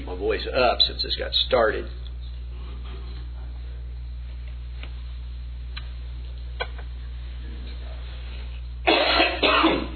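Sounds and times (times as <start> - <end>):
steady low hum: 0.0 - 9.9
speech: 0.2 - 2.0
man giving a talk clearing his throat: 8.9 - 9.9
man giving a talk coughing: 8.9 - 9.9.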